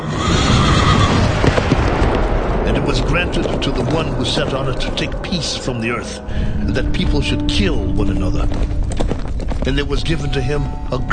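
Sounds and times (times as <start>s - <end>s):
horse neighing: 0.0s - 1.3s
horse hooves clip-clopping: 0.6s - 11.1s
speech: 3.0s - 11.1s.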